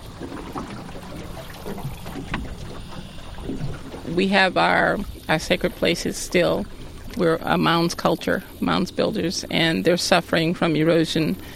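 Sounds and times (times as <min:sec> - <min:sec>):
small trickling splashes near the hull of a drifting boat: 0:00.0 - 0:08.6
soft water lapping near the hull of a drifting boat in a marsh: 0:00.0 - 0:11.5
speech: 0:04.2 - 0:11.5.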